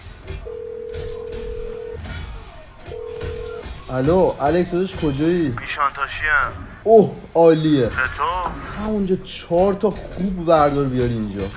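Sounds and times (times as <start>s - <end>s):
steady electronic telephone tone as a call is being placed: 0.4s - 2.0s, 2.9s - 3.7s
speech: 3.9s - 11.5s.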